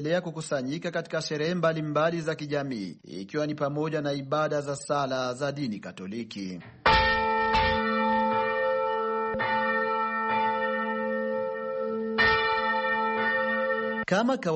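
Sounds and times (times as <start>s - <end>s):
speech: 0.0s - 7.0s, 14.1s - 14.5s
Catholic church bell ringing in Burundi calling worshippers to Sunday prayer: 6.9s - 14.1s.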